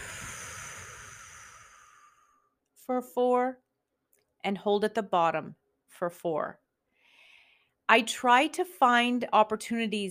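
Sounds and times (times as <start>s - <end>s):
long exhale during a breathing exercise: 0.0s - 2.6s
speech: 2.9s - 3.6s, 4.4s - 6.6s, 7.9s - 10.0s.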